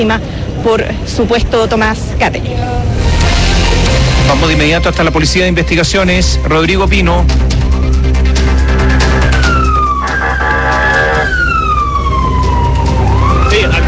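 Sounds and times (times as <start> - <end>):
speech: 0.0 - 3.0, 4.3 - 8.2
low engine and traffic rumble: 0.0 - 13.8
police vehicle siren wailing: 2.9 - 13.8.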